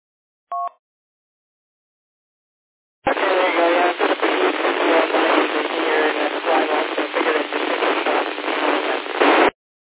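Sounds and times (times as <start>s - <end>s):
two-tone beep: 0.5s - 0.8s
crackling radio transmission through a repeater with static: 3.1s - 9.6s.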